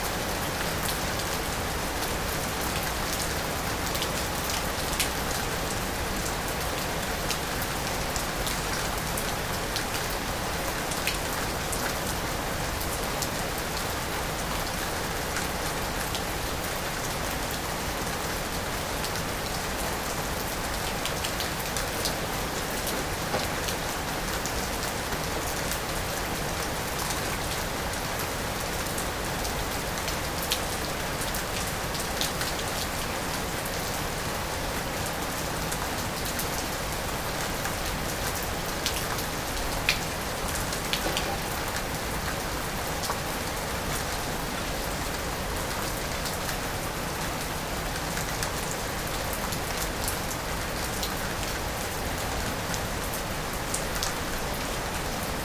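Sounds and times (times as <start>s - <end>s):
rain: 0.0s - 55.4s.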